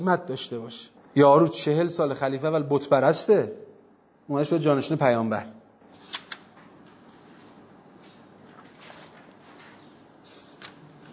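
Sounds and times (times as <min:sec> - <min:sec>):
speech: 0:00.0 - 0:03.7, 0:04.3 - 0:06.2
paper rustling of book pages turning: 0:05.9 - 0:06.7, 0:08.4 - 0:11.1.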